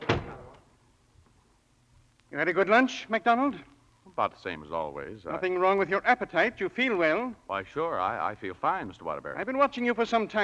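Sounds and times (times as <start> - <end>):
door shutting: 0.0 - 0.7
speech: 2.4 - 10.4.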